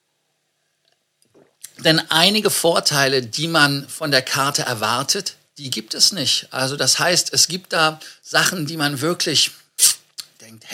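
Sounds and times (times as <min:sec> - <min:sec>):
wet mouth and swallowing noises: 0:01.3 - 0:01.8
sip of water: 0:01.3 - 0:01.9
speech: 0:01.4 - 0:10.7
mouth smack: 0:09.8 - 0:10.4.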